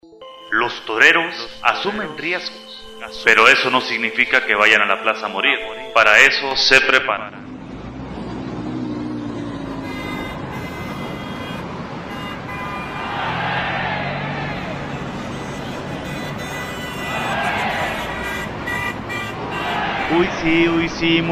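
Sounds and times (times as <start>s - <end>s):
speech: 0.5s - 7.4s, 20.4s - 21.3s
busy street traffic: 0.7s - 21.3s
cars passing: 1.6s - 21.3s
faint tonal car honks: 9.4s - 20.6s.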